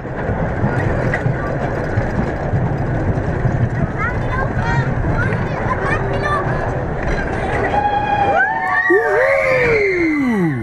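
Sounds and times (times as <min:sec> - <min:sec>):
roller coaster cars rattling and roaring: 0:00.0 - 0:10.6
roller coaster riders screaming: 0:07.6 - 0:10.6.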